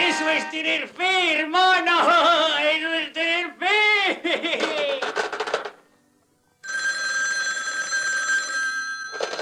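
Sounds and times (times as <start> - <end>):
speech: 0.2 - 4.6
laughter: 4.0 - 5.4
telephone electric bell ringing: 6.6 - 9.3.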